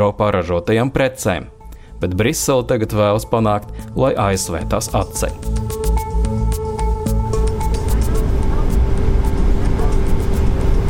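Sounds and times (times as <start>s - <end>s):
speech: 0.0s - 5.8s
sustained hum: 5.0s - 10.8s
Boeing airliner cabin roar during flight: 6.8s - 10.8s.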